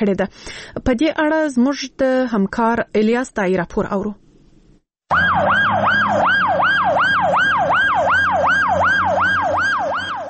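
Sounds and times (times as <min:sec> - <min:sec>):
speech: 0:00.0 - 0:04.2, 0:05.1 - 0:06.2
ambulance siren wailing outside an emergency hospital in Lashkar Gah: 0:05.1 - 0:10.2.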